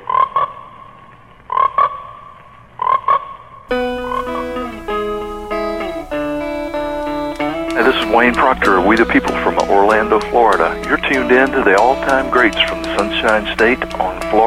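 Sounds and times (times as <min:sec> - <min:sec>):
frogs croaking in a movie trailer: 0:02.8 - 0:14.4
layered tonal music passage in a movie trailer: 0:03.7 - 0:14.4
speech: 0:08.1 - 0:14.4.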